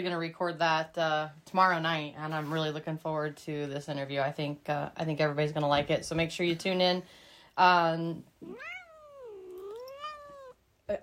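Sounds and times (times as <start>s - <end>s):
speech: 0.0s - 8.7s, 10.9s - 11.0s
kitten meowing: 8.4s - 10.6s.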